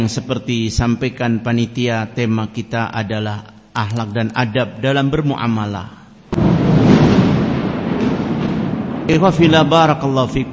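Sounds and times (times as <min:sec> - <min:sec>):
speech: 0:00.0 - 0:06.0, 0:09.1 - 0:10.5
thunder rumbling: 0:06.3 - 0:10.5.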